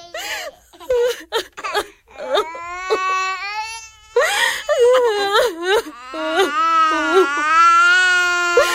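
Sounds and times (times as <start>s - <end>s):
small children crying and wailing at night: 0.0s - 8.7s.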